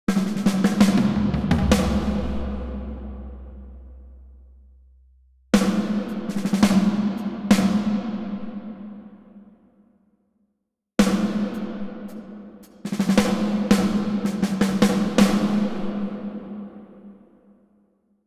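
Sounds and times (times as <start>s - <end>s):
drums in a church: 0.0s - 4.8s, 5.6s - 9.1s, 11.0s - 16.8s.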